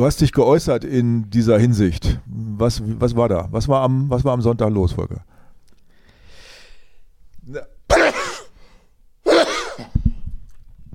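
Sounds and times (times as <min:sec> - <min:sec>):
speech: 0:00.0 - 0:05.3, 0:07.5 - 0:07.7
person sneezing: 0:07.6 - 0:08.6, 0:09.2 - 0:10.0.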